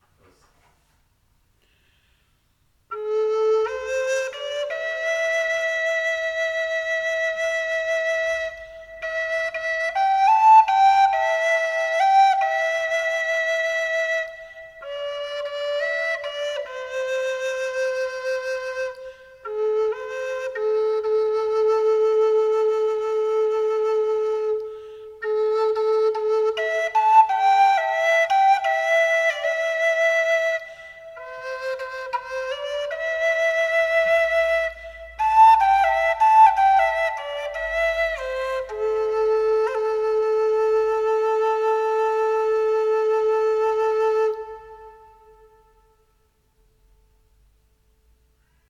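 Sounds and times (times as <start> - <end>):
Native American spirit flute playing: 2.9 - 46.1.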